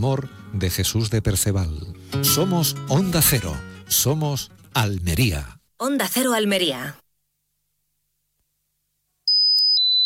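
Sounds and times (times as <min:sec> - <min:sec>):
speech: 0:00.0 - 0:07.0
piercing high-pitched tone imitating tinnitus: 0:09.3 - 0:10.0.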